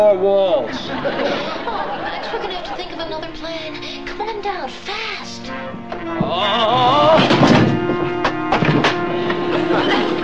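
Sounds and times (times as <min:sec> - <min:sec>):
speech: 0:00.0 - 0:08.2
laughter: 0:00.6 - 0:03.2, 0:09.1 - 0:10.2
head banging into a door: 0:06.0 - 0:09.1.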